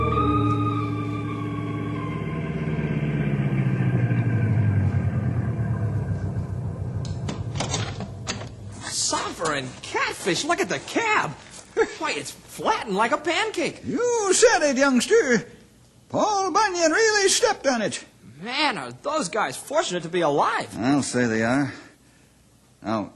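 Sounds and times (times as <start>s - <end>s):
car engine droning as the car drives up a road: 0.2s - 8.8s
speech: 10.3s - 11.4s, 12.0s - 15.5s, 16.1s - 21.8s, 22.8s - 23.1s.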